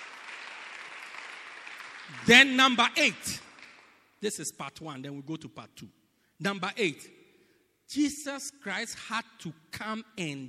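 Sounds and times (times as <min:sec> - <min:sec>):
crowd applauding: 0:00.0 - 0:04.1
speech: 0:02.1 - 0:03.4, 0:04.2 - 0:07.2, 0:07.9 - 0:10.4.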